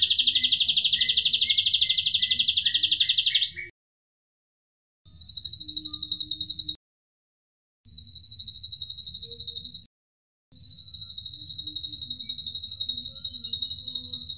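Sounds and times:
Atlantic canary Cililin-style trilling song: 0.0s - 3.7s, 5.1s - 6.8s, 7.9s - 9.9s, 10.5s - 14.3s.

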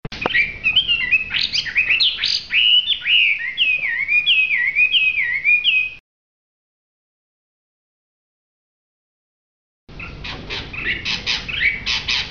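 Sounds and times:
Hwamei singing varied rich whistles: 0.2s - 6.0s, 10.8s - 12.2s.

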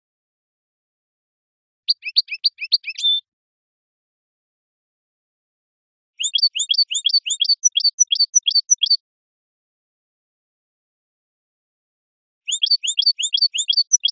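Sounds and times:
European goldfinch twittering song: 6.2s - 9.0s, 12.5s - 14.1s.

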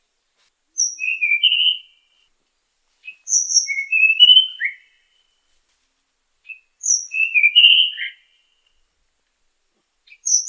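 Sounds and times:
Tanahjampea Blue Flycatcher whistled song: 0.8s - 2.1s, 3.0s - 5.4s, 6.5s - 8.6s, 10.1s - 10.4s.

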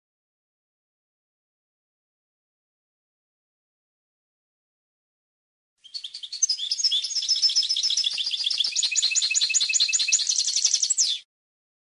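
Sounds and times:
European goldfinch song with liquid twittering and buzzy trills: 5.8s - 11.3s.

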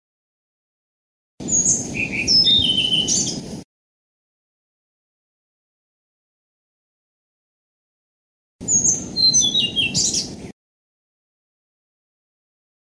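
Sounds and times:
Blue-throated flycatcher whistling: 1.5s - 3.3s, 8.6s - 10.2s.

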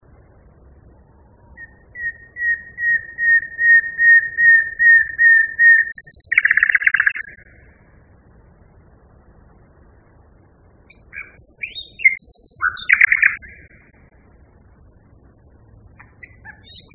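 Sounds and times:
common nightingale singing: 1.0s - 7.8s, 10.8s - 14.0s, 15.9s - 16.9s.

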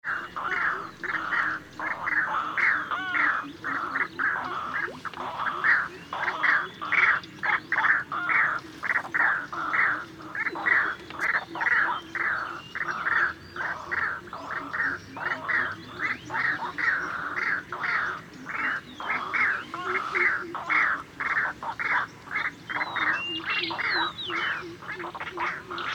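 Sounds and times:
white-breasted waterhen calling: 0.0s - 25.9s.

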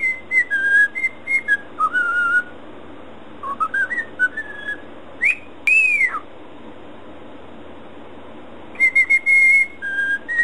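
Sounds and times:
cockatiel whistling: 0.0s - 2.5s, 3.4s - 6.3s, 8.8s - 10.4s.

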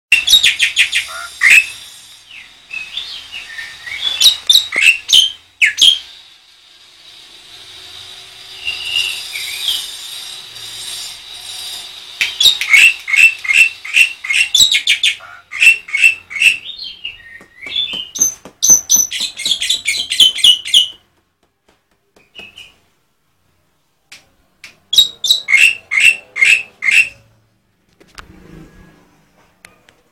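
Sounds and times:
white starling singing: 0.1s - 6.1s, 12.2s - 21.0s, 22.2s - 22.8s, 24.9s - 27.3s.

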